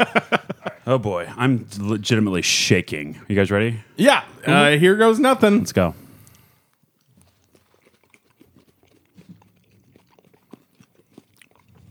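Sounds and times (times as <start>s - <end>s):
laughter: 0.0s - 1.5s
speech: 0.0s - 6.0s
wet chewing and crunching of a sweet fruity candy: 6.2s - 11.8s.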